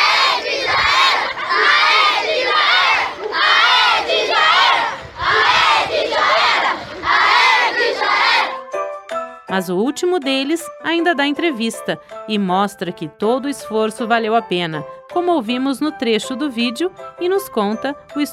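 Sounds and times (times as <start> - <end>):
protest crowd chanting a battle cry: 0.0 - 8.6
speech: 9.6 - 18.3.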